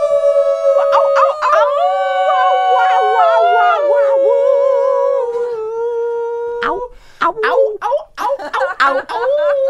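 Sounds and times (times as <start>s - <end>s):
several people howling like wolves for Christmas: 0.0s - 6.6s
shorter yelps and whoops: 0.0s - 6.9s
laughter: 8.2s - 9.6s.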